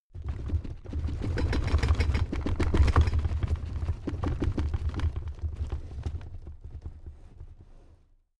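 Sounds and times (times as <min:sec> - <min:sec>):
crammed drawer cabinet rattling: 0:00.2 - 0:05.8.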